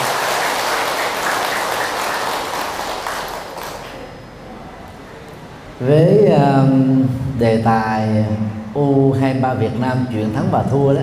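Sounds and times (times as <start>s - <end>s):
large crowd applauding: 0.0s - 4.1s
speech: 5.8s - 11.0s.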